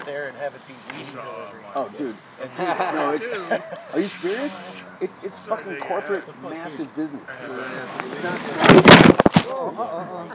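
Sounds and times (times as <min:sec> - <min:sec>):
people talking quietly: 0:00.0 - 0:10.3
speech: 0:00.1 - 0:10.3
laughter: 0:02.4 - 0:04.2, 0:09.5 - 0:10.3
chair knocking and scraping: 0:08.6 - 0:09.4.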